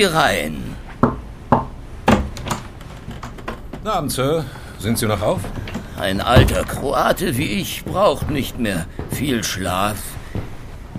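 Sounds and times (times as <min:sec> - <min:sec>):
speech: 0:00.0 - 0:00.7, 0:03.8 - 0:10.1
knocking on a door: 0:01.0 - 0:02.5.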